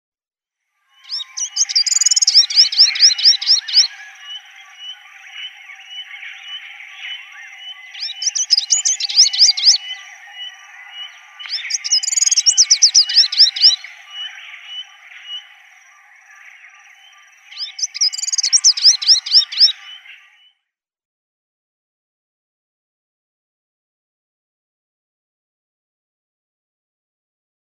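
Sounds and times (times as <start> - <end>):
pygmy sunbird singing: 0.8 - 20.5.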